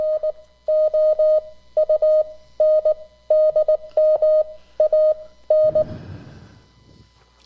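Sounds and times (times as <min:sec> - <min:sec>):
amateur radio CW Morse code tone: 0:00.0 - 0:05.9.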